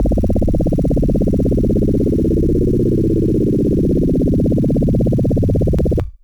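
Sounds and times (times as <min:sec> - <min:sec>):
DX100 electric bass synth note C0: 0:00.0 - 0:06.1.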